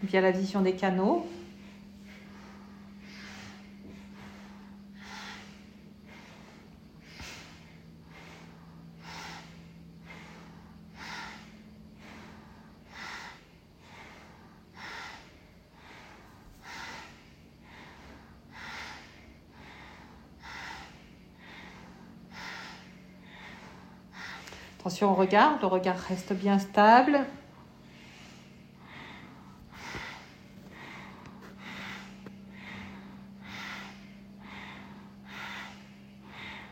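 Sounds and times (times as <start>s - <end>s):
speech: 0.0s - 1.4s, 25.0s - 27.4s
low continuous hum: 0.0s - 36.7s
forceful nasal inhales and exhales in bhastrika breathing with alternating nostrils: 1.0s - 36.7s.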